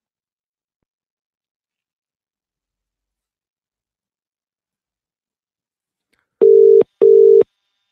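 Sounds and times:
telephone ringing tone while a call connects: 0:06.4 - 0:07.4.

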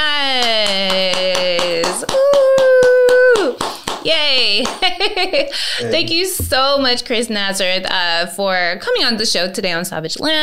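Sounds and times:
steady rhythmic hand clapping: 0:00.0 - 0:06.6
speech: 0:04.1 - 0:10.4.

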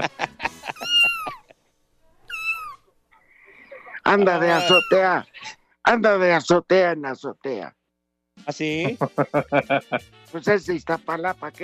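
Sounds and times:
laughter: 0:00.0 - 0:01.5, 0:03.5 - 0:05.2, 0:08.6 - 0:10.1
faint noise: 0:00.0 - 0:11.6
cat meowing: 0:00.7 - 0:01.4, 0:02.2 - 0:02.9, 0:04.5 - 0:05.0
speech: 0:04.1 - 0:07.8, 0:08.4 - 0:11.6.

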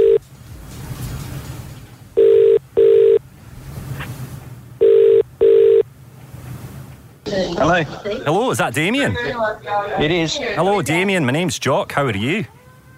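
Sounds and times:
telephone ringback through a handset on an outgoing call: 0:00.0 - 0:00.2, 0:02.2 - 0:03.2, 0:04.8 - 0:05.8
speech: 0:07.6 - 0:12.6.

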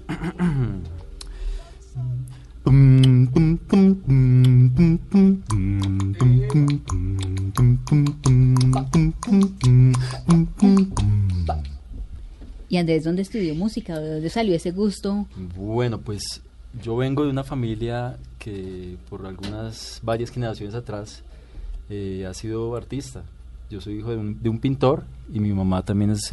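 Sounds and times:
deep male voice singing a walking bass line with wordless syllables: 0:02.6 - 0:11.9
speech: 0:12.8 - 0:26.3.

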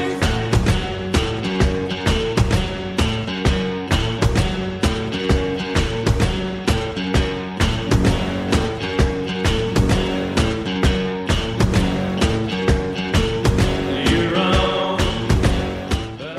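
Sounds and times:
synth-rock pop song with electronic and guitar-like tones: 0:00.0 - 0:16.3.

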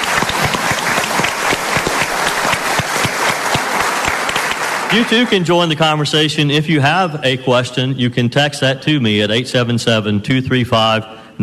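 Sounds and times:
live audience applause: 0:00.0 - 0:05.5
speech: 0:04.9 - 0:11.4.

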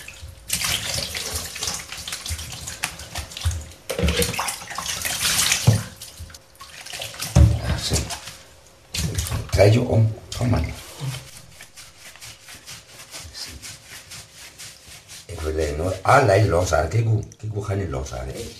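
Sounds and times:
water splashing and sloshing in a bath while bathing a baby: 0:00.0 - 0:17.3
speech: 0:09.6 - 0:10.8, 0:16.0 - 0:18.5.

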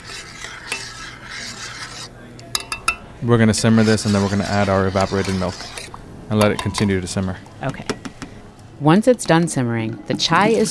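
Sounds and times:
spoon stirring tea leaves, spices and water in a pot for chai: 0:00.0 - 0:08.4, 0:09.0 - 0:10.7
spoon clinking: 0:02.5 - 0:03.1, 0:06.4 - 0:07.0
speech: 0:03.2 - 0:08.0, 0:08.8 - 0:10.7.

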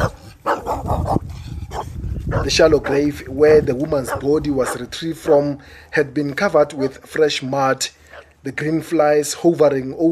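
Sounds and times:
neighbor's dog barking sharply: 0:00.0 - 0:03.0, 0:04.1 - 0:04.9
speech: 0:02.4 - 0:10.0.

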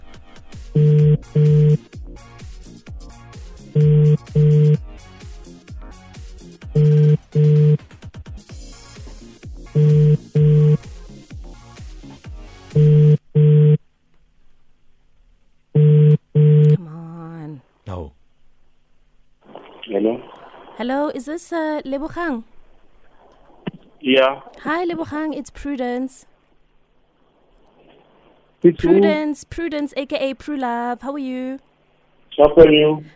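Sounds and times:
telephone ringback tone on an outgoing call: 0:00.8 - 0:01.8, 0:03.8 - 0:04.8, 0:06.8 - 0:07.8, 0:09.7 - 0:10.8, 0:12.7 - 0:13.8, 0:15.8 - 0:16.8
speech: 0:20.9 - 0:22.5, 0:24.1 - 0:26.3, 0:28.6 - 0:31.7, 0:32.4 - 0:33.1.

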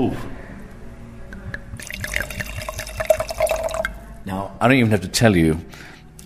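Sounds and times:
speech: 0:00.0 - 0:00.3, 0:04.3 - 0:06.2
Saldo wine poured into a glass at a tasting: 0:01.8 - 0:04.1.

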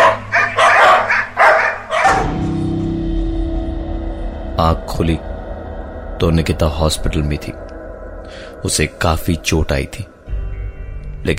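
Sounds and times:
pack of dogs barking: 0:00.0 - 0:02.6
low droning hum: 0:00.0 - 0:11.3
speech: 0:04.7 - 0:05.3, 0:06.2 - 0:07.6, 0:08.3 - 0:10.1.

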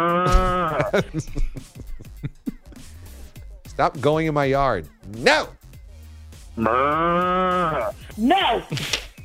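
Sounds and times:
cow mooing: 0:00.0 - 0:00.9, 0:06.6 - 0:08.0
speech: 0:00.0 - 0:01.9, 0:03.8 - 0:05.6, 0:06.6 - 0:09.0
laughter: 0:00.3 - 0:02.8.

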